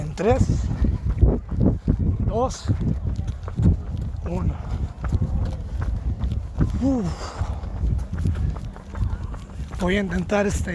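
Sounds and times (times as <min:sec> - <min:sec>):
footfalls of someone running: 0:00.0 - 0:10.7
rustling wind noise: 0:00.0 - 0:10.7
speech: 0:00.2 - 0:00.8, 0:02.4 - 0:03.2, 0:04.3 - 0:04.9, 0:06.8 - 0:07.4, 0:09.8 - 0:10.7.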